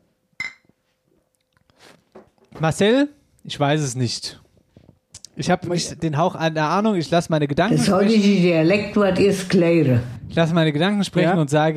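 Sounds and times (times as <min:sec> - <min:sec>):
beer glasses clinking in a toast: 0:00.4 - 0:00.7
glass handling noises: 0:00.4 - 0:00.8
person slurping a sip of beer: 0:01.5 - 0:02.2
speech: 0:02.6 - 0:04.4, 0:05.4 - 0:11.7.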